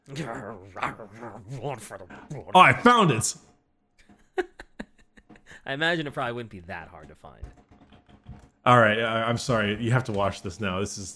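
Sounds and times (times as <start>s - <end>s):
man growling in a low snarl imitating an animal: 0.0s - 2.7s
speech: 0.1s - 3.6s, 5.6s - 7.7s, 8.6s - 11.1s.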